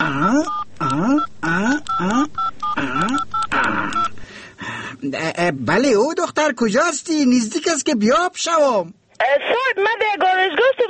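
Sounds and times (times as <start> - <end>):
telephone keypad tones as a number is dialed: 0.3 - 4.2
speech: 5.4 - 10.8.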